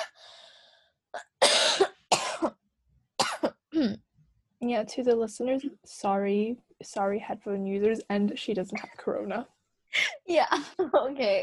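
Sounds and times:
breathy inhale: 0.1 - 1.0
person coughing harshly: 1.2 - 2.6, 3.2 - 4.0
speech: 3.8 - 4.0, 4.6 - 9.6, 10.3 - 11.4.

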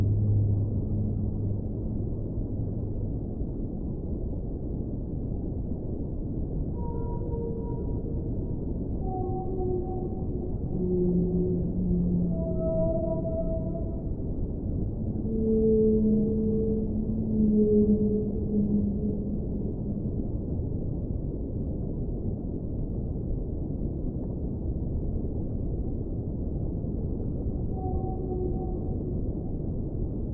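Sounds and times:
constant low underwater rumble: 0.0 - 30.3
whale calls underwater: 9.0 - 14.1, 15.0 - 20.2, 27.7 - 29.2.

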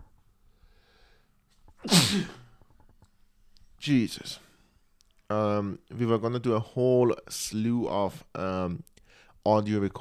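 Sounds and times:
faint breathing: 0.4 - 1.4, 9.0 - 9.4
speech: 1.8 - 2.4, 3.8 - 4.4, 5.3 - 9.9
person sneezing: 1.8 - 2.6.

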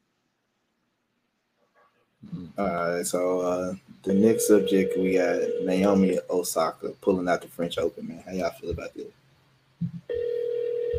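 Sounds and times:
low murmurs: 2.2 - 9.1
speech: 2.2 - 9.2
steady electronic telephone tone: 4.1 - 5.9, 10.1 - 10.9.

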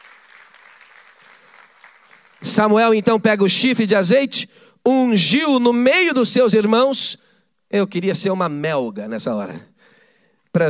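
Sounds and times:
church congregation applauding during worship: 0.0 - 2.8
speech: 2.4 - 9.7.

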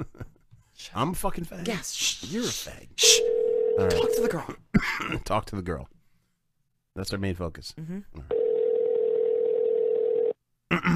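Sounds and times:
speech: 0.8 - 6.0, 7.0 - 8.4, 10.7 - 10.9
phone line ringing tone: 3.0 - 4.3, 8.3 - 10.4.

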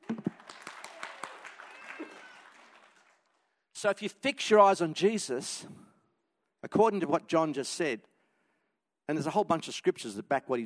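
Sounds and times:
audience clapping: 0.0 - 3.6
speech: 3.8 - 5.8, 6.7 - 8.1, 9.1 - 10.6.

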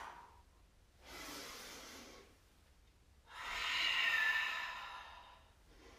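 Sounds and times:
deep yoga breathing: 1.0 - 2.5, 3.3 - 5.9.

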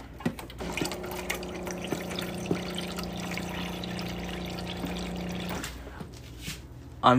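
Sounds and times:
water poured into a dog's bowl: 0.6 - 5.6.

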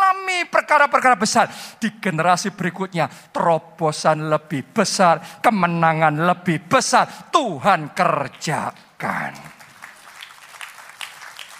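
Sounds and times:
speech: 0.7 - 9.6
audience clapping applause: 9.0 - 11.5.

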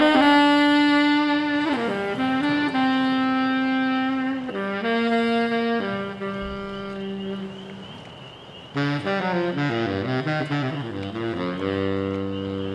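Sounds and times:
rain: 0.0 - 12.7
frogs: 7.5 - 8.9.

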